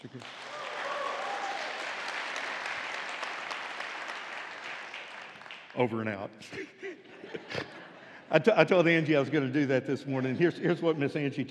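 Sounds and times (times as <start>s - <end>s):
large crowd clapping in a round of applause: 0.0s - 6.2s
faint voices and cheers: 0.4s - 1.9s
speech: 5.8s - 11.4s
laughter: 6.4s - 10.6s.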